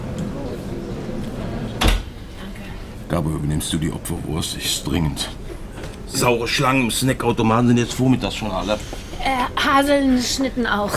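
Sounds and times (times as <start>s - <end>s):
low hum: 0.0s - 10.9s
door shutting thud: 1.8s - 2.1s
speech: 3.1s - 5.4s, 6.1s - 10.9s.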